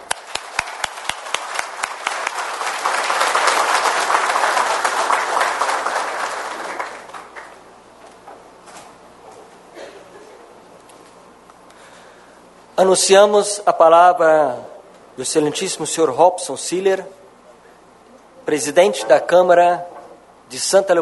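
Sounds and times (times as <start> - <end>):
audience applause: 0.0 - 7.7
speech: 12.8 - 17.2, 18.5 - 19.9, 20.5 - 21.0.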